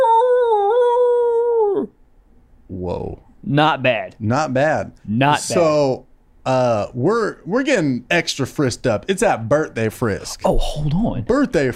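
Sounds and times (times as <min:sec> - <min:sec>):
person imitating a dog howling: 0:00.0 - 0:02.0
speech: 0:02.7 - 0:11.7.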